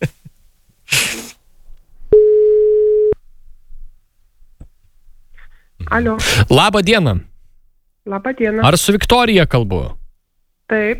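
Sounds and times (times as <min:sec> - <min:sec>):
short hissing burst: 0:00.8 - 0:01.5
telephone busy signal on a failed call: 0:02.1 - 0:03.2
speech: 0:05.9 - 0:07.3, 0:08.0 - 0:10.0, 0:10.7 - 0:10.9.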